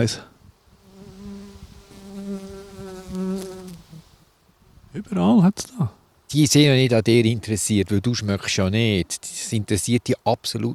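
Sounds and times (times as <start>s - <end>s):
speech: 0.0s - 0.3s, 5.0s - 10.7s
bee buzzing around a person's head beside a fragrant plant: 0.7s - 4.3s.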